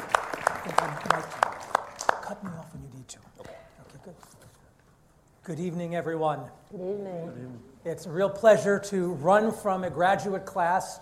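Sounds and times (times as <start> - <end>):
sharp hand claps: 0.0 - 2.7
speech: 0.6 - 1.5, 2.3 - 4.6, 5.4 - 10.9.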